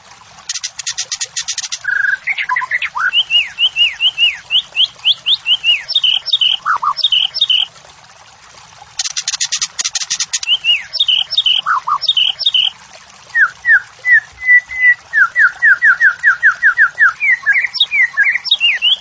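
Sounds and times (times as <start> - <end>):
White-rumped shama morning song: 1.8 - 7.7, 10.4 - 12.7, 13.4 - 18.9.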